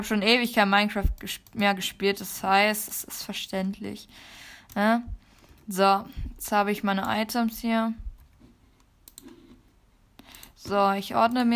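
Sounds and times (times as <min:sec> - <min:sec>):
speech: 0:00.0 - 0:08.0, 0:10.6 - 0:11.5
laptop keyboard or trackpad clicks while playing a video game: 0:08.2 - 0:09.5.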